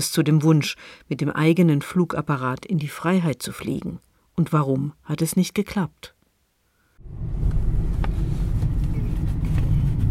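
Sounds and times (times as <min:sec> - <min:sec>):
speech: 0:00.0 - 0:06.2
car engine rumble: 0:07.0 - 0:10.0
tyre road noise: 0:07.0 - 0:10.0.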